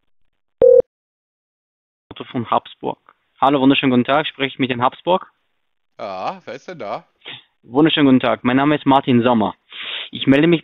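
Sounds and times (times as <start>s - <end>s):
telephone line tone as a second call is placed: 0.6s - 0.8s
speech: 2.4s - 5.4s, 6.0s - 10.6s.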